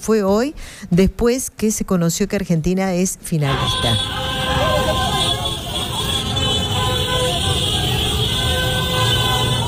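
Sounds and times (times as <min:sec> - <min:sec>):
speech: 0:00.0 - 0:04.5
continuous loud traffic: 0:03.2 - 0:09.6
crowd noise in a busy street in Bangladesh: 0:03.5 - 0:09.6
motorcycle horns honking in a busy street in Bangladesh: 0:03.5 - 0:09.6
motorcycle engines roaring: 0:03.6 - 0:09.6.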